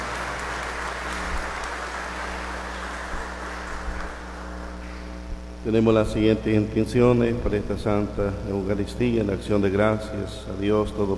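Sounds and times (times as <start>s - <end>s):
audience applauding in church: 0.0s - 5.1s
low hum: 0.0s - 11.1s
speech: 5.6s - 11.1s.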